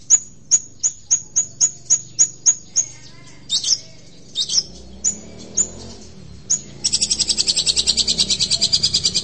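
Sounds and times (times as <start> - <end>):
long-tailed shrike song with sharp notes and rapid buzzy high trill: 0.0 - 9.2.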